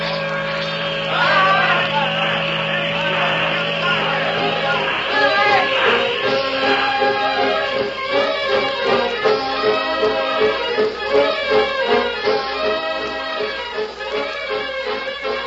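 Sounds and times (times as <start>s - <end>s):
indistinct voices: 0.0s - 11.0s
mechanical noise: 0.0s - 15.4s
steamboat engine droning as boat departs: 0.0s - 15.4s.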